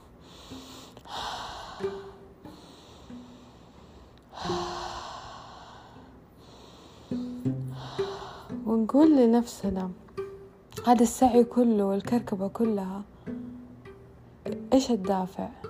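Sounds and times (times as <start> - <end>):
slow deep breaths in and out: 0.0 - 8.6
speech: 8.9 - 10.0, 10.8 - 13.1, 14.8 - 15.6.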